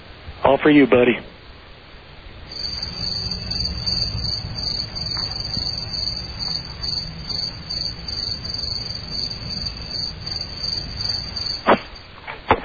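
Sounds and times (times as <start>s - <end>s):
speech: 0.5s - 1.4s
crickets chirping: 2.4s - 12.2s.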